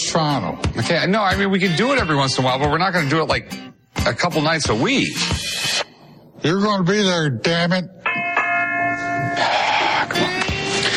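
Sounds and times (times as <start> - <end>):
speech: 0.1 - 5.8, 6.4 - 8.0
bell sound effect ringing: 8.0 - 10.1.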